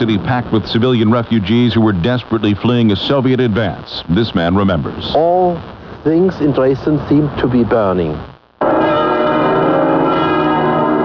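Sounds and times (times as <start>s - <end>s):
speech: 0.0s - 9.0s
church bells in Dresden tolling for bombing anniversary: 8.6s - 11.0s.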